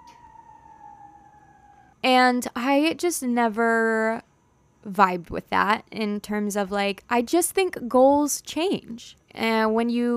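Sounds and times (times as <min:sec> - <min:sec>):
emergency vehicle siren: 0:00.0 - 0:02.0
speech: 0:02.1 - 0:10.1.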